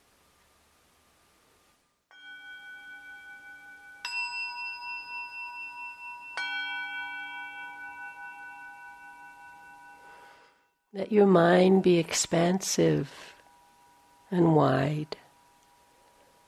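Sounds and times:
meditation bell ringing: 2.1s - 10.9s
speech: 10.9s - 13.3s, 14.3s - 15.2s.

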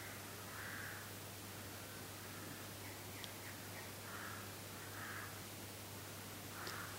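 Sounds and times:
birds cawing outdoors: 0.0s - 1.1s, 1.9s - 5.4s, 6.5s - 6.9s
steady hiss: 0.0s - 6.9s.

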